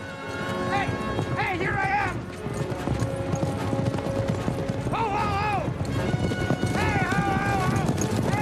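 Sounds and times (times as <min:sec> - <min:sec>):
horses galloping: 0:00.0 - 0:08.3
horses whinnying: 0:02.6 - 0:08.3.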